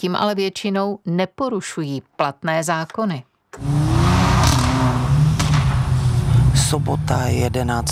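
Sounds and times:
speech: 0.0s - 3.9s, 6.7s - 7.9s
sports car engines revving while drifting in a shopping centre parking lot in Ostrava: 3.6s - 7.9s.

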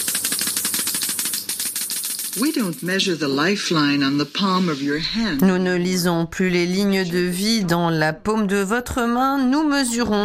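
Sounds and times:
Geiger counter crackling with rapid dense clicking: 0.0s - 4.3s
speech: 2.4s - 10.2s.

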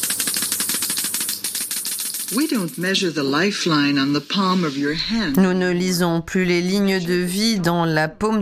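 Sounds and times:
Geiger counter clicking: 0.0s - 5.4s
speech: 2.3s - 8.4s.

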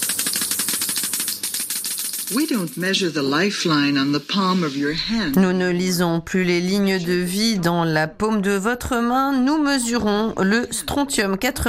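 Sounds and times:
Geiger counter clicking: 0.0s - 3.4s
speech: 2.3s - 11.6s.

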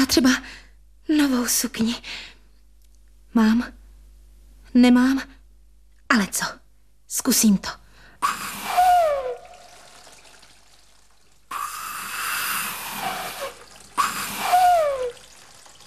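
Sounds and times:
speech: 0.0s - 2.3s, 3.3s - 3.8s, 4.7s - 5.4s, 6.1s - 8.7s
water gushing out of a whistle with gurgling sliding tone: 8.2s - 15.8s.

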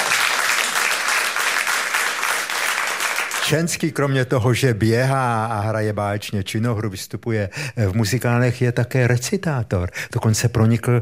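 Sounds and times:
audience applause: 0.0s - 3.7s
speech: 3.5s - 10.9s.

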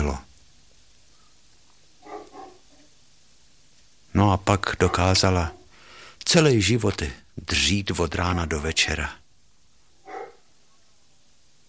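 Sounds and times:
speech: 0.1s - 0.3s, 4.2s - 5.6s, 6.2s - 9.2s
dog barking: 2.0s - 3.0s, 4.8s - 5.7s, 10.0s - 10.9s.

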